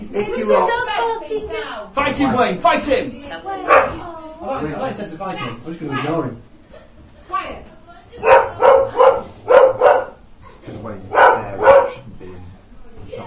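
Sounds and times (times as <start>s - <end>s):
speech: 0.2s - 3.8s, 4.4s - 6.5s
dog barking: 3.6s - 4.0s, 8.2s - 10.2s, 11.1s - 12.0s.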